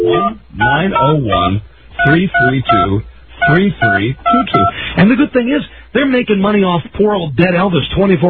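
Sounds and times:
voice mimicking touch-tone dialing beeps over a telephone line: 0.0s - 4.8s
speech: 0.7s - 8.2s.

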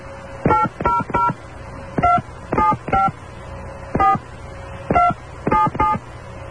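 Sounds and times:
faint steady hum: 0.0s - 6.4s
touch-tone phone keypad beeps dialing: 0.5s - 1.4s, 2.0s - 3.1s, 4.0s - 4.2s, 4.9s - 6.0s.

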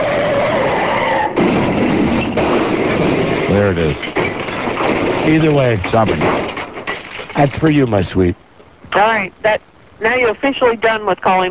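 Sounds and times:
tires screeching in a skid in a car crash sound effect: 0.0s - 7.4s
speech: 3.7s - 4.3s, 5.2s - 6.6s, 7.4s - 11.4s.

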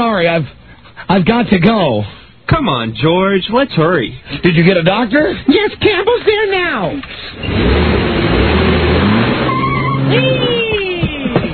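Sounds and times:
speech: 0.0s - 8.0s, 10.1s - 10.3s
car engine revving as the car accelerates and drives off: 7.4s - 10.4s.

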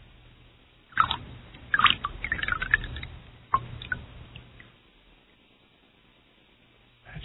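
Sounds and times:
ice water dripping into a glass of absinthe: 0.9s - 4.7s.

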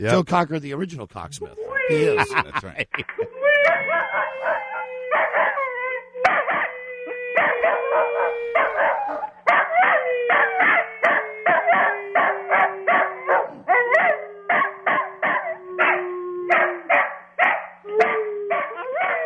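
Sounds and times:
speech: 0.0s - 5.0s
laughter: 1.9s - 3.4s
sustained slowly falling howl-like tone: 3.6s - 16.9s
Cocker Spaniel barking loudly and rapidly: 3.9s - 5.6s, 6.2s - 6.7s, 7.4s - 19.2s.

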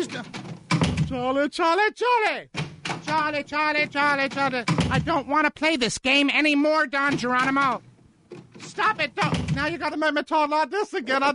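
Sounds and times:
speech: 0.0s - 0.5s, 1.1s - 7.9s, 8.7s - 11.3s
door hinge creaking open and shut: 0.0s - 1.3s, 2.5s - 5.3s, 7.0s - 10.0s.

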